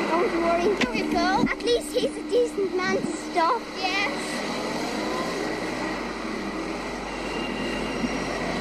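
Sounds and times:
road traffic roar: 0.0 - 8.6
speech: 0.3 - 4.7.

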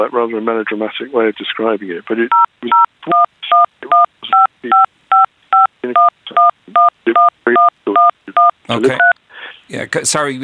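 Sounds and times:
speech: 0.0 - 4.9, 8.8 - 9.1, 9.7 - 10.4
phone keypad tones from dialing a number during a phone call: 2.3 - 9.2.

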